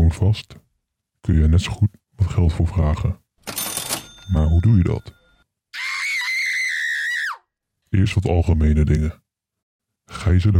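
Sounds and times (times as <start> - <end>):
speech: 0.1 - 0.6, 1.2 - 3.6, 4.3 - 5.2, 7.9 - 9.2, 10.1 - 10.5
loud high-pitched scream: 5.8 - 7.5.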